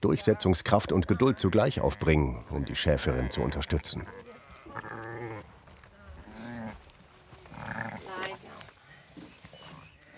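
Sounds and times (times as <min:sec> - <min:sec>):
speech: 0:00.0 - 0:04.3
irritable young sheep bleating: 0:00.4 - 0:05.4, 0:07.4 - 0:08.4.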